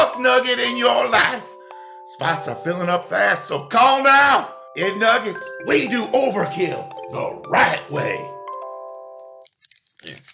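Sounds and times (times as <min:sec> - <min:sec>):
speech: 0:00.2 - 0:08.3
paper gift certificates being torn up: 0:09.4 - 0:10.3.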